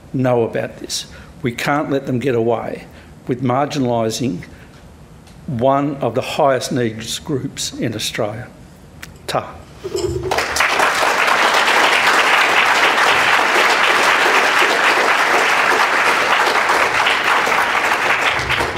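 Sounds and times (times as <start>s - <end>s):
speech: 0.1s - 4.6s, 5.5s - 8.6s, 9.3s - 10.2s
large audience clapping: 10.2s - 18.7s.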